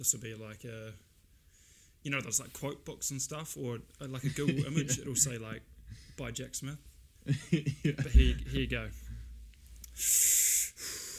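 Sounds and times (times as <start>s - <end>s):
speech: 0.0s - 1.1s, 2.0s - 9.0s, 10.0s - 10.4s
soft breath: 1.3s - 2.0s, 9.0s - 11.1s
sharp breath drawn in close to the microphone: 1.5s - 2.0s, 9.9s - 11.1s.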